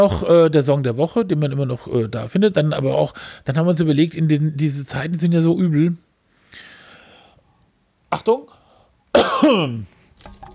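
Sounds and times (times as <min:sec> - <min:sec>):
speech: 0:00.0 - 0:06.7, 0:08.1 - 0:08.6, 0:09.2 - 0:10.0
person coughing: 0:09.1 - 0:09.9.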